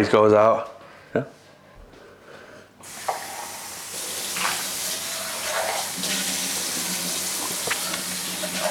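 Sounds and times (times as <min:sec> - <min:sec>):
speech: 0:00.0 - 0:01.4
kitchen tap water running while washing dishes: 0:02.8 - 0:08.6.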